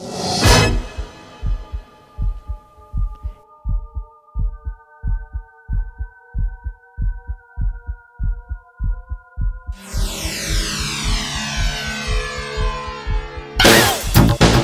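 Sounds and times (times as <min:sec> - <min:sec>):
swelling music: 0:00.0 - 0:14.6
recorded human heartbeat thumping: 0:01.0 - 0:09.8.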